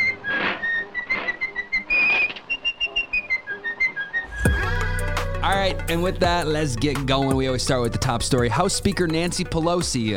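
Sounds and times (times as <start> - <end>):
cheerful whistled tune from a cartoon: 0.0 - 6.1
speech: 5.4 - 10.1.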